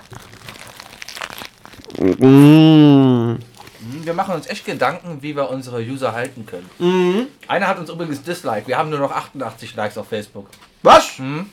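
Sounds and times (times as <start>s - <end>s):
biting into a döner kebab with crisp crunching and crinkling: 0.0s - 2.5s
speech: 2.0s - 3.4s, 4.1s - 11.5s.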